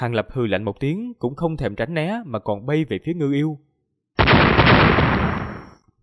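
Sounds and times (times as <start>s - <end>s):
speech: 0.0s - 3.7s
electric arcs of water-lightning exploding against a body: 4.2s - 5.8s.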